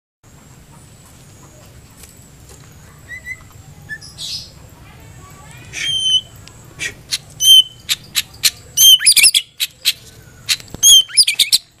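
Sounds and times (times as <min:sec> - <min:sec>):
White-rumped shama song: 0:03.1 - 0:04.4, 0:05.8 - 0:11.7.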